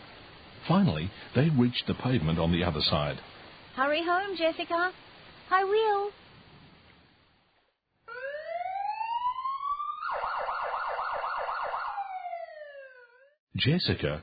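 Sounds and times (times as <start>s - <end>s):
speech: 0.7s - 6.2s, 13.6s - 14.2s
siren of a fire truck parked near a house: 8.1s - 13.4s.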